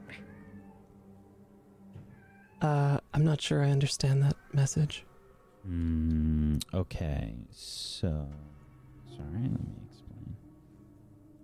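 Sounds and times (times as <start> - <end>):
cat meowing: 0.0 - 0.9, 2.1 - 2.7
low steady hum: 0.0 - 11.4
speech: 2.6 - 10.3.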